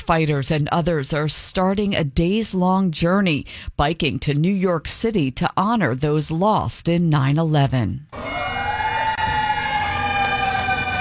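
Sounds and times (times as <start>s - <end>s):
speech: 0.0s - 8.6s
fire engine sirens wailing in Boston: 8.2s - 10.9s
street noise rumble: 8.2s - 10.9s.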